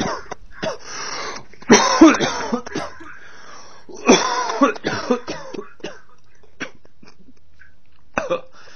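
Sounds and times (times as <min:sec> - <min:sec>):
person coughing: 0:00.0 - 0:03.3, 0:03.9 - 0:06.9, 0:08.2 - 0:08.5.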